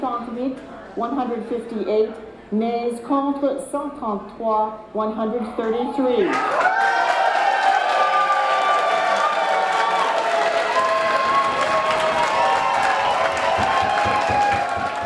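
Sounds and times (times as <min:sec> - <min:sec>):
speech: 0:00.0 - 0:07.0
large crowd applauding: 0:06.2 - 0:15.0.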